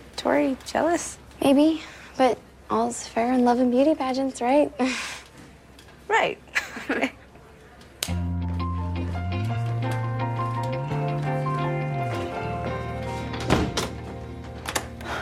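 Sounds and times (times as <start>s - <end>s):
speech: 0.2s - 5.2s, 6.1s - 7.2s
sustained music: 8.1s - 15.1s
door thudding shut: 13.4s - 14.0s.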